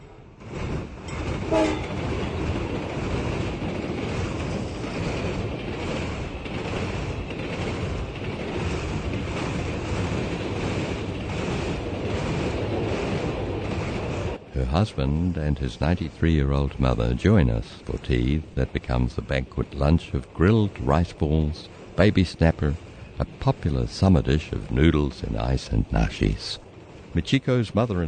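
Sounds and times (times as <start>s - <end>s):
train passing on a curved railway line on a cliff: 0.0s - 28.0s
horn-like tone: 1.5s - 1.9s
speech: 14.8s - 28.0s.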